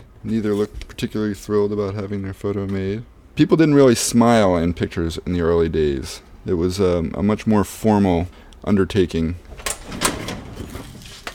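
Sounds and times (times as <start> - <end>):
speech: 0.2 - 9.6
metal filing drawer full of photos rolling open: 9.5 - 11.3.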